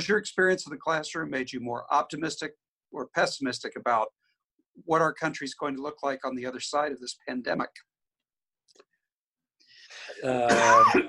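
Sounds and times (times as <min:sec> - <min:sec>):
speech: 0:00.0 - 0:04.2, 0:04.8 - 0:07.9, 0:10.1 - 0:11.0
man giving a throaty cough: 0:10.1 - 0:11.0.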